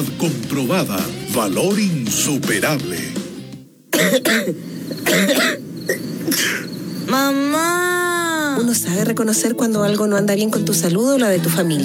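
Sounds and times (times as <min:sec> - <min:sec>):
speech: 0:00.0 - 0:03.2, 0:04.0 - 0:07.9, 0:08.6 - 0:11.8
harsh wet coughs: 0:03.9 - 0:06.7
gravelly throat clearing: 0:04.0 - 0:06.7.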